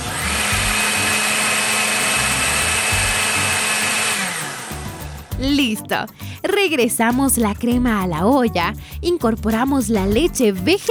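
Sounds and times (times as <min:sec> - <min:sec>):
blender running at high speed pureeing thick vegetable soup: 0:00.0 - 0:05.4
speech: 0:05.4 - 0:10.9.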